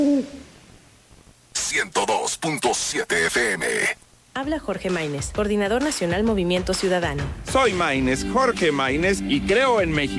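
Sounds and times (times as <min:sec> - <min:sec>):
owl hooting: 0:00.0 - 0:00.5
speech: 0:01.7 - 0:10.1.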